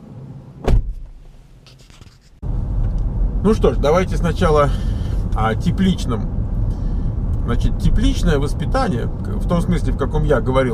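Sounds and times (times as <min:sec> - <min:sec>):
low car cabin rumble: 0:00.4 - 0:01.4, 0:02.4 - 0:10.7
sharp thump: 0:00.6 - 0:01.2
steady car engine drone: 0:02.4 - 0:10.7
speech: 0:03.4 - 0:06.4, 0:07.5 - 0:10.7.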